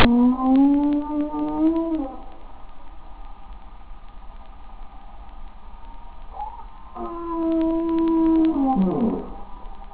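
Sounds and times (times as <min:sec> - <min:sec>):
humpback whale: 0:00.0 - 0:02.4, 0:06.3 - 0:09.7.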